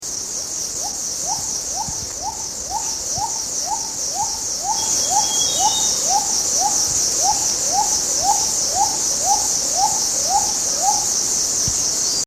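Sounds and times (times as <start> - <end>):
little cuckoo dove calling: 0.8 - 11.2.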